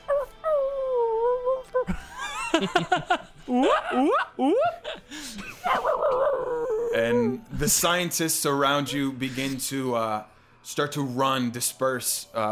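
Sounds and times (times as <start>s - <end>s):
person imitating a wolf howling through a large room: 0.0s - 1.9s, 3.5s - 4.8s, 5.6s - 7.4s
laughter: 1.9s - 6.7s
speech: 2.6s - 5.9s, 7.0s - 12.5s.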